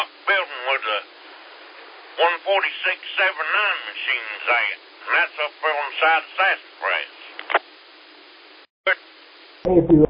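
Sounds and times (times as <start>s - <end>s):
radio channel band-limited static: 0.0s - 1.1s, 2.1s - 7.7s
speech: 2.6s - 7.1s.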